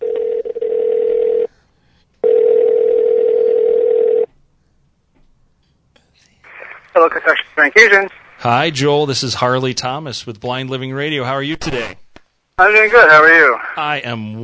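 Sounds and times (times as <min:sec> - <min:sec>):
steady telephone tone: 0:00.0 - 0:01.5, 0:02.2 - 0:04.3
speech: 0:07.0 - 0:12.0, 0:12.6 - 0:14.4.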